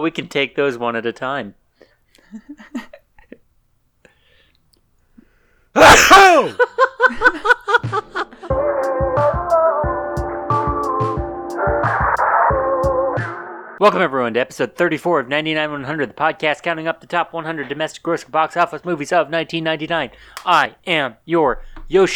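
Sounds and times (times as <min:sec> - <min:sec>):
speech: 0:00.0 - 0:01.6, 0:02.2 - 0:02.9, 0:06.0 - 0:08.0, 0:13.8 - 0:22.1
quick breathy gasps: 0:01.7 - 0:02.3, 0:04.0 - 0:06.6, 0:20.1 - 0:20.5, 0:21.6 - 0:21.9
person sneezing: 0:05.8 - 0:06.7
laughter: 0:05.8 - 0:08.6
music with a steady punchy beat: 0:07.8 - 0:13.4.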